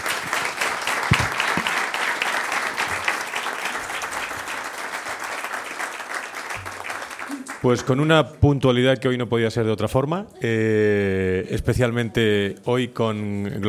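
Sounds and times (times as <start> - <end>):
audience applause at a corporate health-day forum: 0.0 - 8.1
speech: 7.6 - 13.6.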